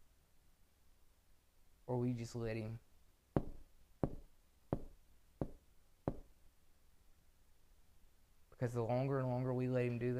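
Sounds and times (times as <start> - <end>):
speech: 1.9 - 2.9, 8.6 - 10.1
firm knocking on a door: 3.4 - 6.3.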